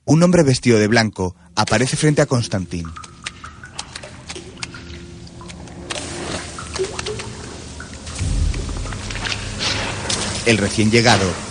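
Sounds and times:
speech: 0.1 - 3.1, 10.5 - 11.4
water dripping from a ceiling onto a flooded floor: 1.1 - 11.4
steady wet hiss: 1.3 - 11.4
low rumble: 8.1 - 10.8.

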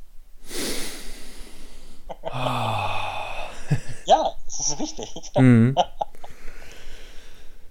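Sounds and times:
long deliberate breath into microphone: 0.4 - 2.1, 6.3 - 7.6
laughter: 3.5 - 6.3
speech: 4.7 - 6.0.

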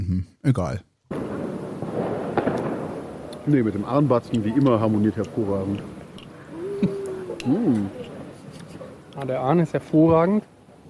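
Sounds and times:
speech: 0.2 - 0.9, 3.4 - 6.0, 6.8 - 8.1, 9.2 - 10.5
firecrackers exploding outside: 1.1 - 6.6
laughter: 6.4 - 7.8.

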